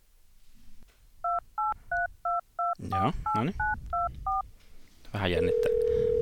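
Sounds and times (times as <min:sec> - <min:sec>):
touch-tone beeps from a phone keypad: 0:01.3 - 0:04.4
speech: 0:02.9 - 0:03.8, 0:05.1 - 0:06.2.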